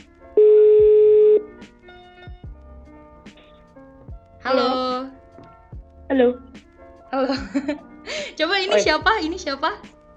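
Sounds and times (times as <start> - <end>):
short beeps: 0.4 - 1.4
steady electronic phone tone: 0.4 - 1.5
speech: 6.2 - 6.5, 7.2 - 9.9.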